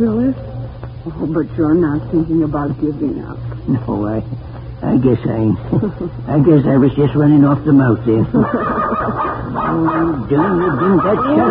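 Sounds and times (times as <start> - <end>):
speech: 0.0 - 11.5
laughter: 5.6 - 6.4, 8.1 - 11.5
dog barking and yipping: 8.4 - 11.5.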